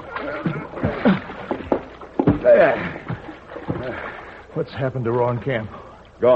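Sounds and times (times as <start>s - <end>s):
rowboat oars splashing in water: 0.0s - 4.5s
speech: 0.2s - 1.2s, 4.6s - 6.3s.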